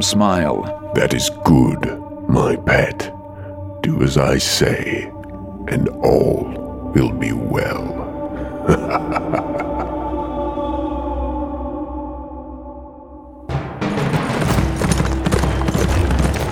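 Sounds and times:
speech: 0.0s - 3.2s, 3.8s - 8.0s, 8.7s - 9.5s
sustained tonal backdrop: 0.0s - 16.5s
laughter: 7.8s - 10.5s
horse hooves clip-clopping to a stop: 13.8s - 16.5s.

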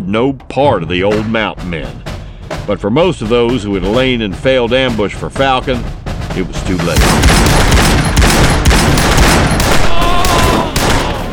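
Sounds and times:
speech: 0.1s - 7.7s
gunfire volley of .44 and .45 caliber guns in a street shootout: 6.8s - 11.3s.

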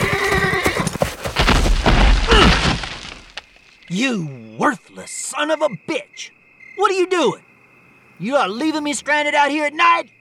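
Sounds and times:
lame horse whinnying loudly and shakily: 0.0s - 1.2s
hoof clops of a horse: 0.0s - 3.0s
low rumbling crash of a horse falling: 0.7s - 3.5s
heavy thuds: 1.2s - 3.5s
speech: 3.9s - 7.5s, 8.2s - 10.1s.

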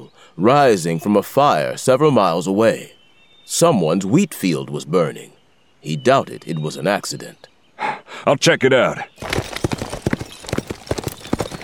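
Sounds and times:
speech: 0.3s - 7.5s, 8.2s - 9.5s
hooves of a ridden horse clip-clopping: 9.2s - 11.6s.

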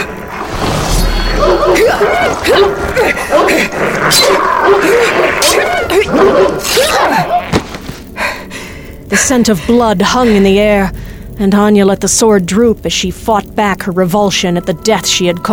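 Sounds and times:
several dogs snarling, yelping and whimpering in a scuffle in a corridor: 0.0s - 7.7s
speech: 1.8s - 7.4s, 9.1s - 15.5s.

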